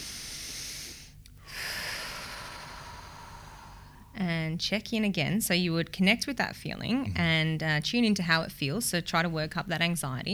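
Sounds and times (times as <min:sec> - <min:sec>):
deep breath in and out during an EFT tapping session: 0:00.0 - 0:04.2
speech: 0:04.2 - 0:10.3.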